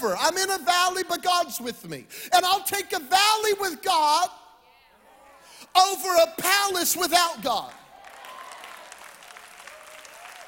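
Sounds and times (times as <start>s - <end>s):
speech: 0.0s - 4.4s, 5.7s - 7.8s
congregation applauding: 7.6s - 10.4s.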